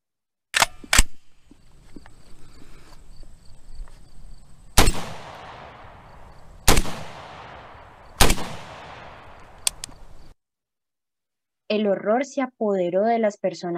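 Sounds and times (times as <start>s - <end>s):
rifle shots with long tails: 4.8s - 10.2s
speech: 11.7s - 13.7s.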